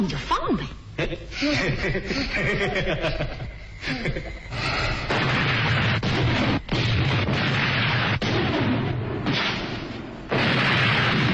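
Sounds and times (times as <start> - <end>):
speech: 0.0 - 5.1
laughter: 1.0 - 4.5
loud battlefield explosions: 5.0 - 11.3.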